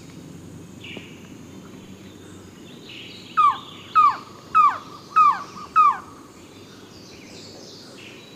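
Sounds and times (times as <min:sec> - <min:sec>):
Mountain trogon giving descending barking notes: 0:03.4 - 0:06.2.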